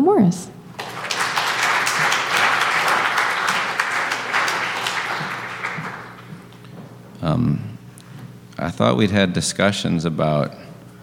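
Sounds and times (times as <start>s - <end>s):
speech: 0.2s - 1.0s, 8.6s - 10.7s
church audience applauding: 0.7s - 6.6s.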